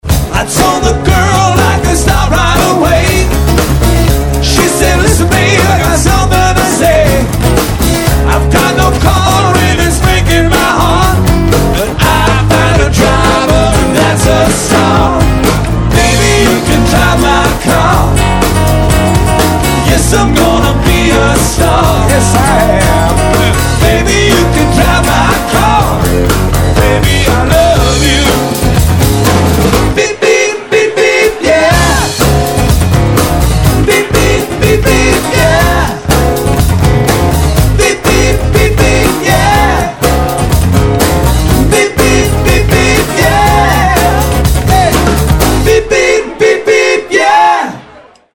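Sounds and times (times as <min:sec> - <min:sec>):
live band playing: 0:00.0 - 0:47.1.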